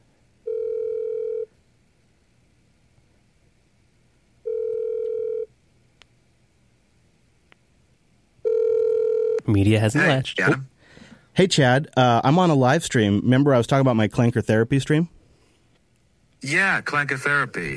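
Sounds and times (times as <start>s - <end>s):
faint hiss: 0.0s - 17.7s
outgoing phone call ringback tone: 0.4s - 1.5s, 4.4s - 5.5s, 8.4s - 9.5s
speech: 9.5s - 10.7s, 11.4s - 15.2s, 16.4s - 17.7s.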